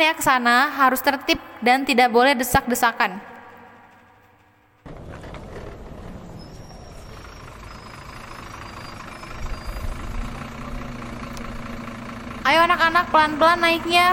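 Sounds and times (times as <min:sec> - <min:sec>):
speech: 0:00.0 - 0:03.3, 0:12.5 - 0:14.1
vehicle engine idling in front of a school yard: 0:03.9 - 0:14.1.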